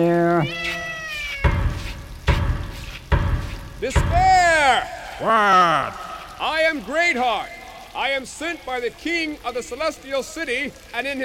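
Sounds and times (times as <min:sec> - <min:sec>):
speech: 0:00.0 - 0:00.8, 0:03.8 - 0:11.2
black cat meowing: 0:00.2 - 0:01.9
loud thumps or booms: 0:01.4 - 0:07.1.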